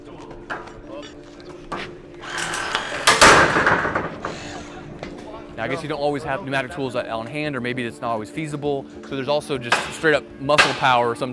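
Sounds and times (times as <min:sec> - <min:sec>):
battery-powered hydraulic rescue spreader motor whirring: 0:02.2 - 0:04.9
speech: 0:05.6 - 0:11.3.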